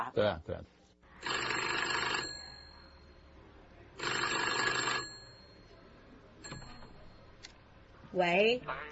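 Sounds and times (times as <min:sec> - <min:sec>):
speech: 0:00.0 - 0:01.3, 0:08.1 - 0:08.9
old-fashioned mechanical bell of American-made 1910 telephone ringing: 0:01.2 - 0:03.4, 0:04.0 - 0:05.8, 0:06.4 - 0:07.3.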